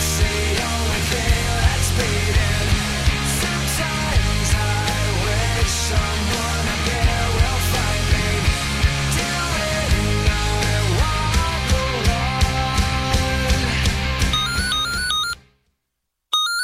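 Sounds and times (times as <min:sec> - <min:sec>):
loud full-band music track: 0:00.0 - 0:15.0
bright beeping electronic ringtone melody: 0:14.3 - 0:15.4, 0:16.3 - 0:16.6.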